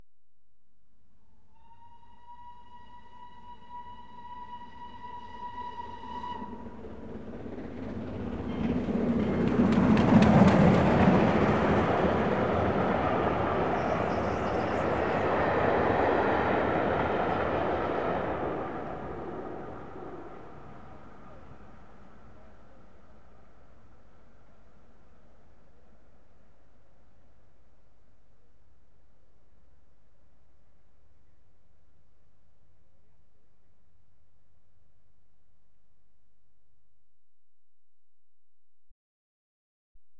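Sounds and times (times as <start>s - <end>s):
train passing at high speed on welded rails: 1.6s - 24.4s.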